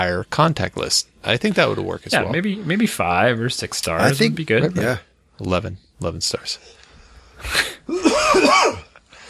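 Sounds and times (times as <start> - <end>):
speech: 0.0 - 6.8, 7.4 - 8.8
man coughing: 7.7 - 8.9.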